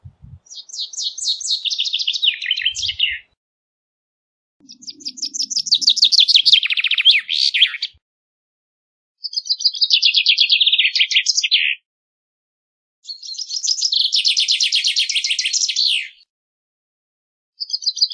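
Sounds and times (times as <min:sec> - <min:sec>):
common chaffinch singing: 0:00.0 - 0:03.4, 0:04.6 - 0:08.0, 0:09.2 - 0:11.7, 0:13.1 - 0:16.2.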